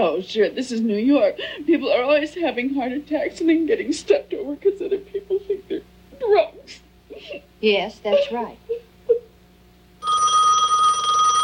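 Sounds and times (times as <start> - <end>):
speech: 0.0 - 8.8
telephone bell ringing: 10.0 - 11.4.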